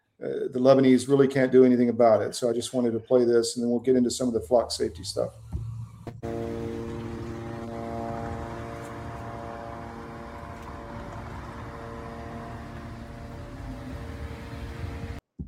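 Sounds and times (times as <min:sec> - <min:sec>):
speech: 0:00.2 - 0:05.5
urban noise: 0:02.0 - 0:15.2
surveillance drone propeller hum over a city: 0:05.6 - 0:15.2.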